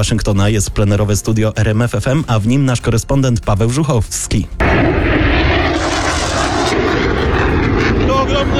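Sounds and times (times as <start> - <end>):
speech: 0.0 - 5.1
military jet engines roaring during a flyover: 4.6 - 8.5.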